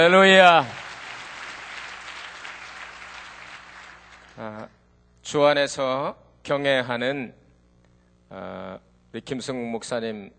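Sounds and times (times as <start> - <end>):
speech: 0.0 - 0.8, 4.4 - 7.4, 8.3 - 10.3
church audience applauding: 0.0 - 4.6.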